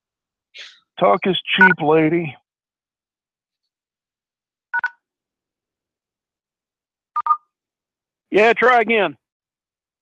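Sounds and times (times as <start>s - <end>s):
speech: 1.0s - 2.4s, 8.3s - 9.2s
telephone keypad tones from pound and star key presses in a voicemail menu: 4.7s - 5.0s, 7.2s - 7.5s.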